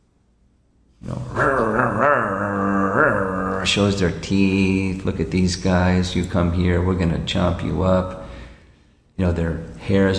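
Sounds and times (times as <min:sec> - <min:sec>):
human voice imitating a pack of territorial dogs growling: 0:01.0 - 0:04.0
speech: 0:03.6 - 0:08.2, 0:09.2 - 0:10.1.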